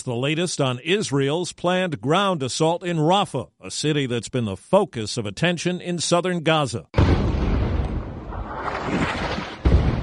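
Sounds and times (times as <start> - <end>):
speech: 0.0 - 7.2
heavy rumbling explosions: 7.0 - 10.0
sharp loud blast: 7.0 - 10.0.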